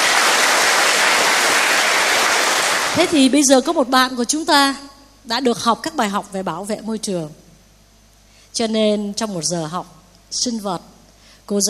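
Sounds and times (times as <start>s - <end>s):
crowd at a retreat session applauding: 0.0s - 3.2s
speech: 3.0s - 7.4s, 8.5s - 10.9s, 11.5s - 11.6s.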